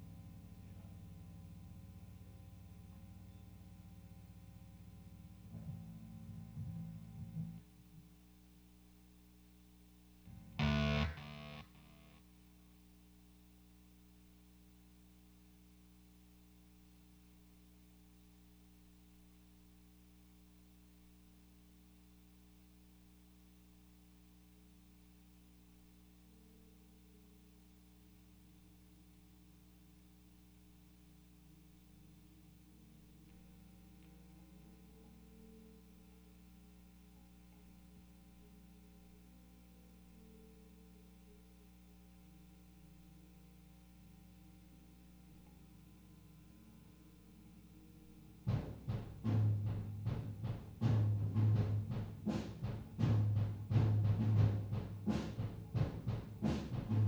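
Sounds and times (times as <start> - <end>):
bass guitar recorded in mono through a dynamic microphone: 0.0 - 7.6, 10.3 - 12.2, 48.5 - 57.0.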